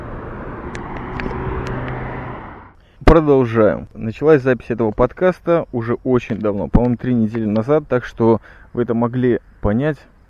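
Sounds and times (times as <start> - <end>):
large vehicle engine drone on a street: 0.0 - 3.2
speech: 3.1 - 10.1.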